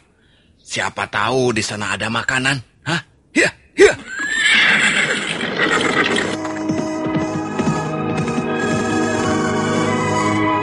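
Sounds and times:
speech: 0.8 - 4.8
horse whinnying: 3.9 - 9.1
galloping hooves: 4.6 - 10.4.

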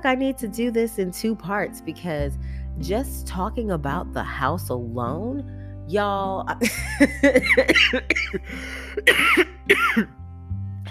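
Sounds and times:
speech: 0.0 - 10.2
person with a hoarse voice coughing: 7.2 - 10.1.

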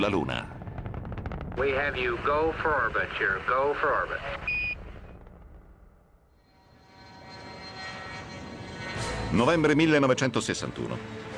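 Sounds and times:
speech: 0.0 - 0.6, 1.6 - 4.7, 9.3 - 11.2
X-15 rocket plane engine roaring during a pilot test: 0.0 - 6.0.

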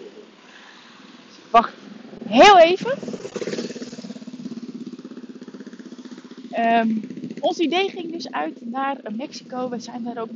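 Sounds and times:
speech: 1.5 - 3.7, 6.6 - 10.3
small motorcycle or moped engine puttering: 2.2 - 10.3.

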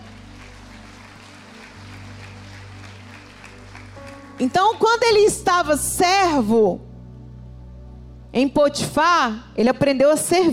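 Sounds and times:
church audience clapping during a sermon: 0.0 - 5.2
low sustained musical drone: 0.0 - 10.5
speech: 4.4 - 6.8, 8.4 - 10.5.

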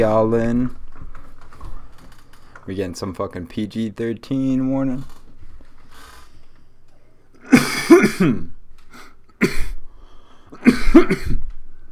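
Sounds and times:
speech: 0.0 - 0.8, 2.7 - 5.2, 7.9 - 8.6, 9.4 - 9.6, 10.6 - 11.5
coughing: 7.4 - 9.8, 10.6 - 11.5
harsh throat clearing: 7.4 - 9.8, 10.6 - 11.5.

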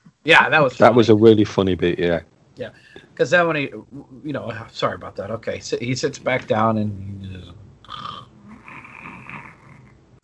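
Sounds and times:
speech: 0.2 - 8.3
man snoring: 6.2 - 9.9.

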